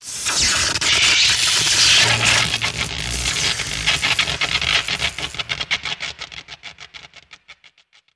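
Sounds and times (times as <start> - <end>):
lengthy electric arc: 0.0 - 6.1.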